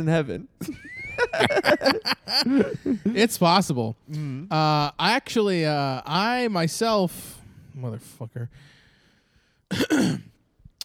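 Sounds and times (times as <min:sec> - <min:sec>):
speech: 0:00.0 - 0:08.7, 0:09.7 - 0:10.3
laughter: 0:00.6 - 0:03.2
cough: 0:09.7 - 0:10.4.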